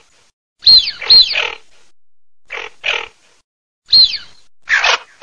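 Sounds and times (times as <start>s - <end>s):
male tufted duck whistling: 0.6s - 1.6s, 3.9s - 5.1s.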